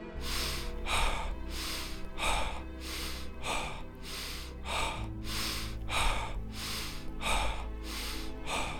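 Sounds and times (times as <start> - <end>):
fast forceful breathing at double speed: 0.0 - 8.7
low continuous musical drone: 0.0 - 8.7.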